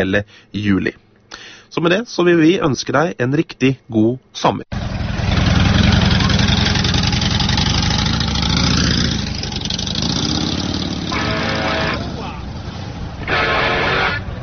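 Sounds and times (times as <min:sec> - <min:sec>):
speech: 0:00.0 - 0:04.8
motorcycle engine running as it is ridden: 0:04.7 - 0:14.3.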